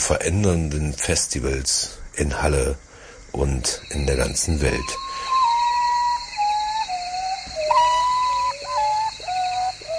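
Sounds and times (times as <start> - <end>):
faint hissing background: 0.0 - 9.9
speech: 0.1 - 5.1
common potoo mournful whistled call: 4.8 - 9.9.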